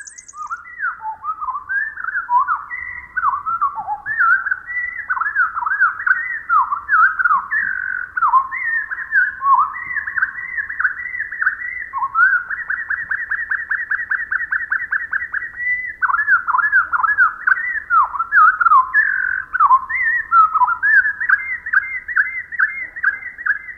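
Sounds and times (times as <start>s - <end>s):
winter wren song slowed to quarter speed: 0.0s - 23.7s.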